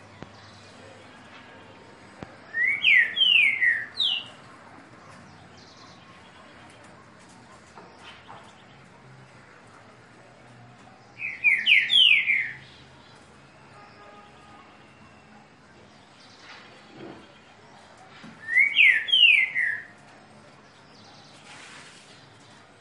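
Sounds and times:
green-winged saltator singing downslurred whistles: 0:02.5 - 0:04.3, 0:11.2 - 0:12.7, 0:18.4 - 0:19.9.

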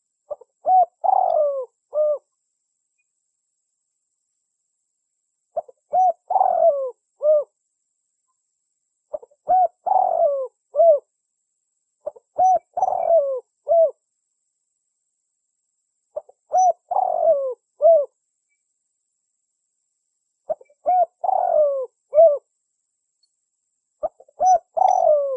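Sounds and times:
spotted dove three-part coo phrases used as a lure call: 0:00.0 - 0:02.3, 0:05.6 - 0:07.6, 0:09.1 - 0:11.1, 0:12.0 - 0:14.0, 0:16.2 - 0:18.2, 0:20.5 - 0:22.4, 0:24.0 - 0:25.3.

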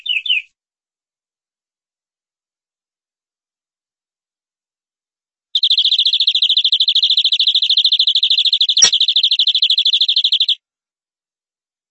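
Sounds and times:
canary metallic rolling trill: 0:05.6 - 0:10.6.

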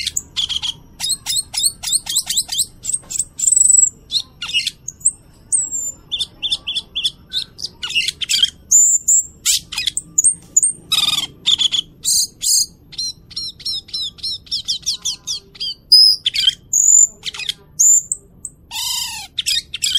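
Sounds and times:
cucak keling singing a medley of chirps, clicks and whistled slurs: 0:00.0 - 0:19.9.

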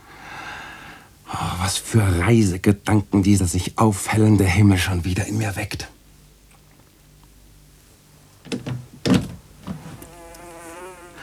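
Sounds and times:
speech: 0:01.4 - 0:06.0
soft knocks and rustles: 0:08.4 - 0:10.4
housefly buzzing as it escapes through a window: 0:08.5 - 0:11.2.

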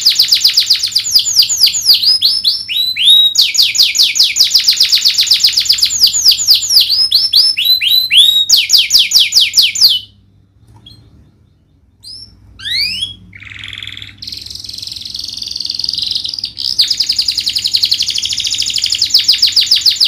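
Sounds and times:
domestic canary singing: 0:00.0 - 0:20.0.

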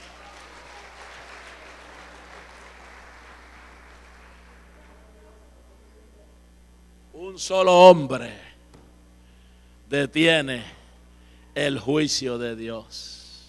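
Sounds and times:
congregation applauding during a Sunday morning church service: 0:00.0 - 0:05.2
low electrical hum: 0:00.0 - 0:13.4
speech: 0:07.4 - 0:08.4, 0:09.9 - 0:10.8, 0:11.6 - 0:13.2.

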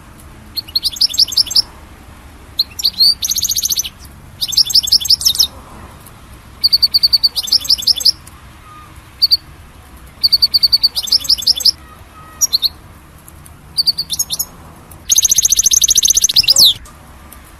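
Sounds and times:
European goldfinch song: 0:00.5 - 0:01.7, 0:02.5 - 0:05.5, 0:06.6 - 0:12.9, 0:13.6 - 0:17.5.

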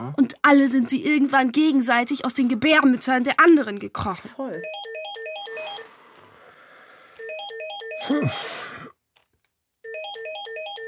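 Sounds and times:
speech: 0:00.1 - 0:04.9, 0:08.1 - 0:08.6
electronic telephone ringtone with chirping melodic pattern: 0:04.6 - 0:06.0, 0:07.2 - 0:08.2, 0:09.8 - 0:10.8.

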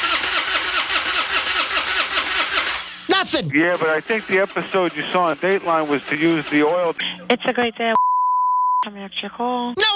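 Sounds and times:
car starter motor cranking an engine that fails to start: 0:00.0 - 0:03.1, 0:03.8 - 0:07.0
speech: 0:03.3 - 0:08.1, 0:08.8 - 0:09.9.

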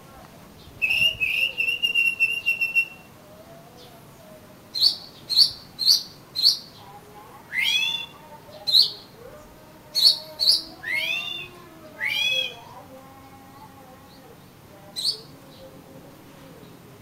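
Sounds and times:
Oriental magpie-robin song: 0:00.7 - 0:03.1, 0:04.8 - 0:06.8, 0:07.5 - 0:09.0, 0:10.0 - 0:12.7, 0:15.0 - 0:15.3
faint lower whistles: 0:00.8 - 0:03.1.

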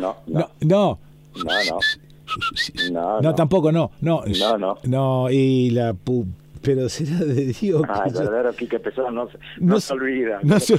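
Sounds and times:
speech: 0:00.0 - 0:10.7
person whistling a tune: 0:01.4 - 0:03.0.

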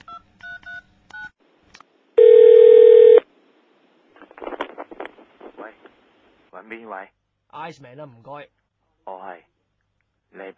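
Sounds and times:
touch-tone dialing on a telephone: 0:02.2 - 0:03.2
speech: 0:06.7 - 0:09.5, 0:10.3 - 0:10.5.

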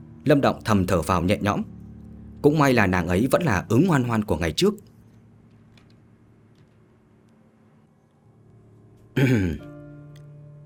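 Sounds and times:
faint low hum: 0:00.0 - 0:10.6
speech: 0:00.2 - 0:01.7, 0:02.4 - 0:04.9, 0:09.2 - 0:09.7
man clearing his throat: 0:09.2 - 0:09.7.

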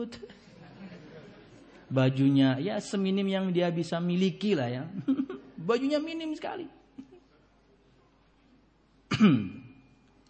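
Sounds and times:
speech: 0:00.0 - 0:00.4, 0:01.9 - 0:06.8, 0:09.2 - 0:09.6
cough: 0:09.1 - 0:09.8.

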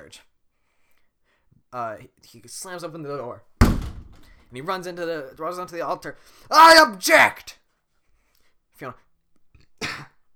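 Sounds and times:
speech: 0:00.1 - 0:00.3, 0:01.7 - 0:03.5, 0:04.5 - 0:07.6, 0:08.8 - 0:09.0
throaty cough-burp from swallowed air: 0:09.8 - 0:10.2.

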